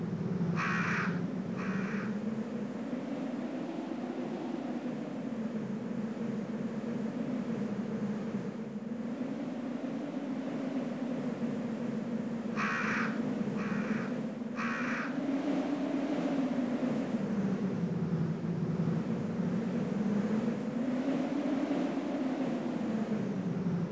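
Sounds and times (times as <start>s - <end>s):
steady low rumble: 0.0s - 23.8s
crow cawing: 0.6s - 2.2s, 12.6s - 15.2s.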